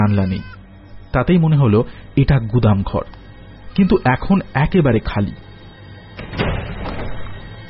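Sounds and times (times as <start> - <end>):
speech: 0.0 - 0.6, 1.2 - 3.2, 3.8 - 5.5
heavy wooden door of a windowless brick storeroom swinging open: 6.2 - 7.6.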